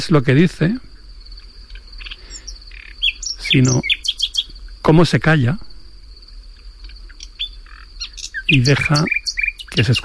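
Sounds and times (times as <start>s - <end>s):
speech: 0.0s - 0.9s, 3.5s - 4.0s, 4.9s - 5.7s, 8.5s - 10.0s
nightingale singing at night in a recently burned area: 0.0s - 10.0s.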